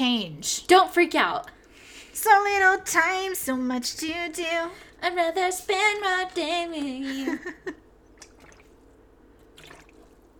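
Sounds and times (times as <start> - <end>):
speech: 0.0 - 1.6, 2.2 - 7.8
person sipping water close to the microphone: 8.1 - 10.3
soft wet slurps and gulps: 8.1 - 10.3.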